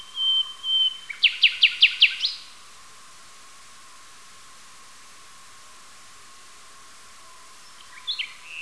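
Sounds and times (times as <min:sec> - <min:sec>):
nightingale singing: 0:00.0 - 0:02.6, 0:07.2 - 0:08.5.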